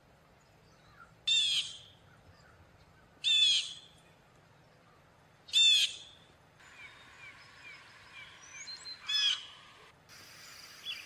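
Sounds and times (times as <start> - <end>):
blue jay giving harsh buzzy jay calls: 0.8 - 2.6, 3.2 - 3.9, 5.5 - 9.7.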